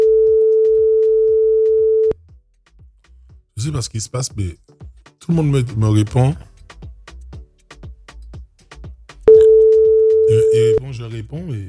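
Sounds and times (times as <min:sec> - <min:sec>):
telephone busy signal while calling someone back: 0:00.0 - 0:02.2, 0:09.3 - 0:10.8
speech: 0:03.6 - 0:06.5, 0:11.0 - 0:11.6.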